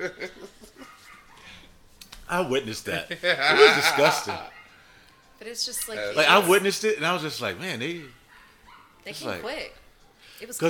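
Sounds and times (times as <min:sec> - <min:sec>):
speech: 0:00.0 - 0:00.4, 0:02.3 - 0:04.6, 0:05.4 - 0:08.2, 0:09.0 - 0:09.8, 0:10.4 - 0:10.6
dogs barking and yipping: 0:00.7 - 0:01.7, 0:03.6 - 0:05.0, 0:08.2 - 0:09.0
laughter: 0:03.1 - 0:04.5.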